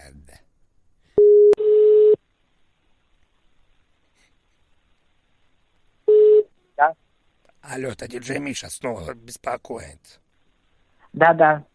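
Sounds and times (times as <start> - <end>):
telephone line tone while placing a call: 1.2 - 2.2
speech: 6.8 - 7.0, 7.7 - 10.2, 11.1 - 11.7.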